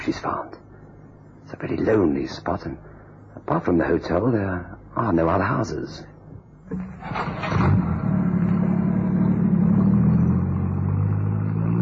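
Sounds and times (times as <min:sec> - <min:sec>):
speech: 0:00.1 - 0:00.6, 0:01.5 - 0:06.1, 0:06.7 - 0:07.9
car engine accelerating: 0:06.8 - 0:11.8.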